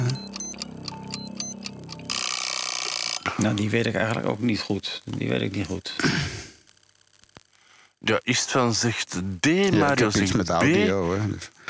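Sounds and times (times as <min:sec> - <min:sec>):
loud sustained buzzing alarm-like burst of a quiz timer: 0:00.0 - 0:03.4
bright chiming tones of a quiz timer clock: 0:00.0 - 0:03.6
quiz timer clock ticking: 0:00.0 - 0:04.3
speech: 0:03.3 - 0:06.4, 0:08.0 - 0:11.6.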